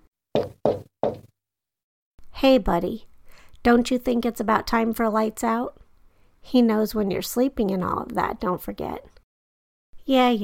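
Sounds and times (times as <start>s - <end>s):
firm knocks on a door: 0.4s - 1.3s
speech: 2.4s - 5.8s, 6.4s - 9.2s, 10.1s - 10.4s.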